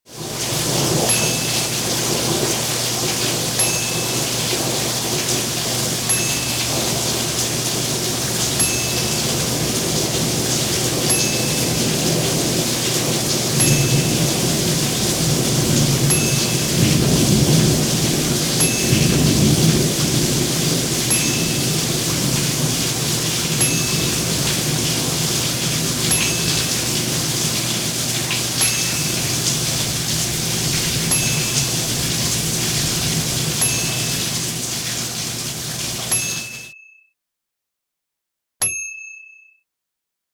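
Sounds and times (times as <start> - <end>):
rain: 0.1 - 36.7
thunder: 11.8 - 22.9.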